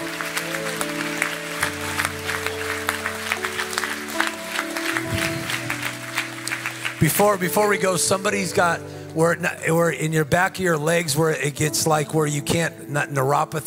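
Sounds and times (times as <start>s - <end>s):
crowd clapping: 0.0s - 8.3s
sustained keyboard or organ chords: 0.0s - 13.6s
speech: 7.0s - 13.6s.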